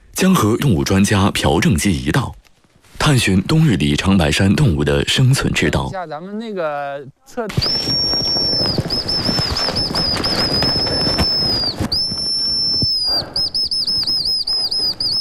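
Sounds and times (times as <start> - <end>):
speech: 0.2 - 2.4, 3.0 - 8.9
rustling: 2.4 - 3.2, 7.5 - 13.2
reed whistle imitating a hazel grouse call: 7.5 - 15.1.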